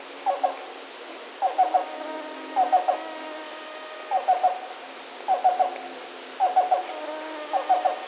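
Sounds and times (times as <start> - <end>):
faint background noise: 0.0 - 8.0
black-billed cuckoo Coccyzus erythropthalmus cooing: 1.4 - 3.4, 4.0 - 4.6, 5.3 - 8.0.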